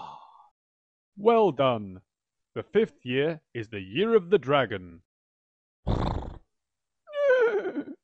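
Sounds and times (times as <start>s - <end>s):
speech: 1.2s - 5.1s
horse snorting: 5.9s - 6.4s.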